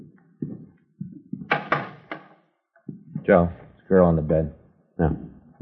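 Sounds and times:
bedroom door being opened with wooden thuds: 1.5s - 2.2s
speech: 3.3s - 5.3s.

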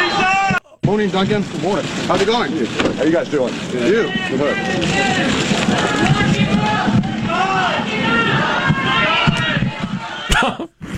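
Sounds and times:
dense crowd of protesters shouting outside a federal courthouse in San Diego: 0.0s - 0.7s, 3.8s - 10.5s
speech: 0.9s - 6.9s, 10.4s - 10.8s
laughter: 10.0s - 10.9s.

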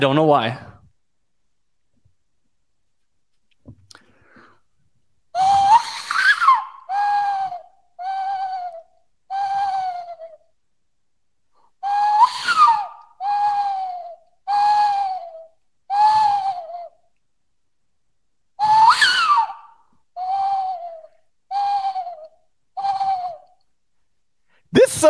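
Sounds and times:
speech: 0.0s - 0.7s
person imitating a western screech owl call: 5.4s - 10.4s, 11.8s - 16.9s, 20.2s - 23.4s, 24.8s - 25.0s.

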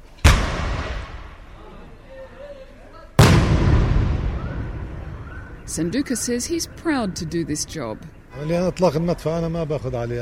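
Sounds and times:
old British cannon blasts with rumbling echo outdoors: 0.2s - 1.5s, 3.2s - 6.3s
speech: 5.8s - 10.2s.

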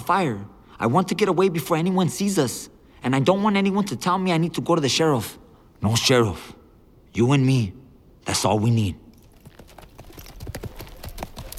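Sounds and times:
speech: 0.1s - 9.0s
hooves of horses ridden through the night clopping: 9.1s - 11.5s.

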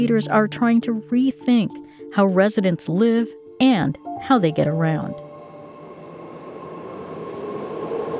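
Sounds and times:
speech: 0.0s - 5.2s
BART commuter train rumbling through a station in San Jose: 4.9s - 8.1s.

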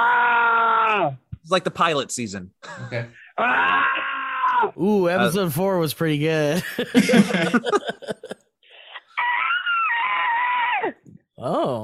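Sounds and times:
loud sustained scream: 0.0s - 1.2s, 3.4s - 4.8s, 9.2s - 11.0s
wavering wailing cry: 0.0s - 1.2s, 3.3s - 4.8s, 8.9s - 11.0s
speech: 0.9s - 4.0s, 4.6s - 8.2s
short harsh shrieks: 3.2s - 4.8s, 8.8s - 11.0s
laughter: 6.5s - 8.5s.

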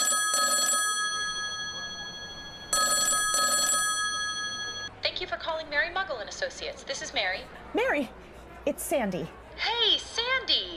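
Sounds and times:
telephone ringback tone of a call made from a cell phone: 0.0s - 4.9s
speech: 5.9s - 10.7s.

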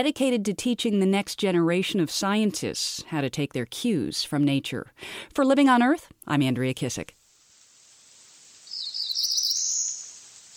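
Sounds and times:
speech: 0.0s - 7.2s
faint hiss: 7.0s - 10.5s
cerulean warbler singing a high buzzy phrase: 8.7s - 10.2s.

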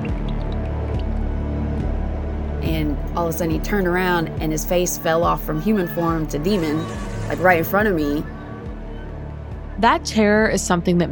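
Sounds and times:
water drips into standing water in a bathtub: 0.0s - 1.5s
steady low droning hum: 0.0s - 11.1s
speech: 2.8s - 8.3s, 9.8s - 11.1s.

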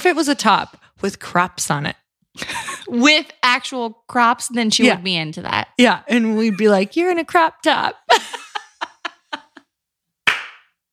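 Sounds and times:
speech: 0.0s - 8.4s
laughter: 6.1s - 6.9s, 7.8s - 9.6s
sharp hand claps: 10.2s - 10.8s.

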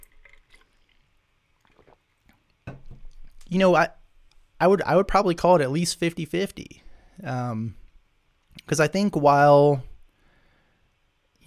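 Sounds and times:
person sipping and swallowing water: 0.0s - 3.5s
cup being set down: 2.7s - 3.1s
speech: 3.5s - 4.0s, 4.6s - 7.8s, 8.7s - 9.9s.

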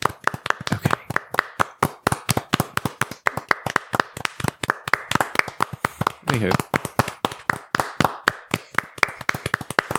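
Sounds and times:
one person's soft polite hand clapping: 0.0s - 9.9s
speech: 6.3s - 6.7s.

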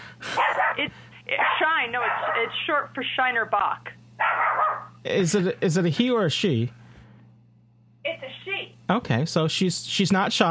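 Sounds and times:
female dog barking: 0.4s - 2.7s, 4.2s - 5.0s
speech: 0.8s - 4.4s, 5.0s - 6.8s, 8.9s - 10.5s.

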